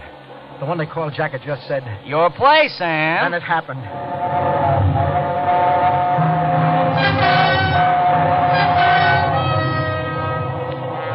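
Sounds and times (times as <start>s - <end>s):
train roaring through a tunnel: 0.0s - 11.1s
speech: 0.6s - 5.2s
whistle-like tones: 3.9s - 10.1s.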